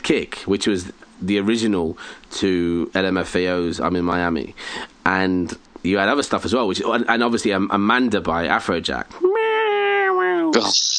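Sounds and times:
speech: 0.1 - 9.4, 10.5 - 10.9
sharp breathy hiss: 1.9 - 2.3, 4.6 - 5.0
voice mimicking a screechy synth lead: 9.2 - 10.9.

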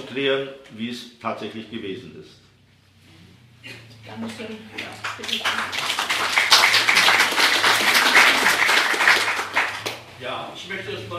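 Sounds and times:
speech: 0.1 - 2.5, 3.6 - 6.6, 10.2 - 11.1
crowd applauding with many hands clapping: 4.8 - 10.0.

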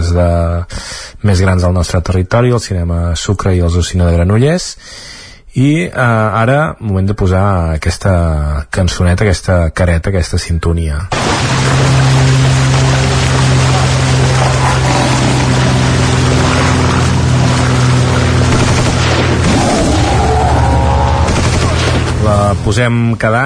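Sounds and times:
speech: 0.1 - 12.5, 22.3 - 23.4
machine-gun fire: 11.1 - 22.6
rising whine of plane swooping past: 11.4 - 23.0
propeller aircraft engines droning: 11.4 - 23.2.

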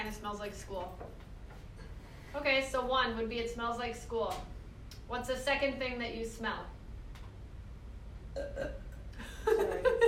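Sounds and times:
speech: 0.0 - 1.3, 2.3 - 6.8, 8.4 - 8.8
person burping: 8.3 - 9.2.

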